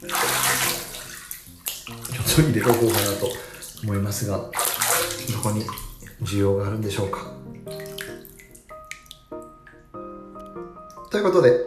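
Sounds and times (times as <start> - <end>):
bath water sloshing and splashing in a tub: 0.0 - 9.9, 10.6 - 11.6
speech: 2.4 - 4.6, 5.3 - 7.4, 11.2 - 11.6.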